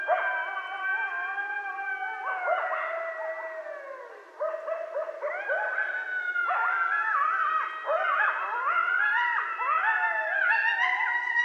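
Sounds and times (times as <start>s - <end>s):
coyotes howling in a group chorus at night: 0.0s - 11.4s.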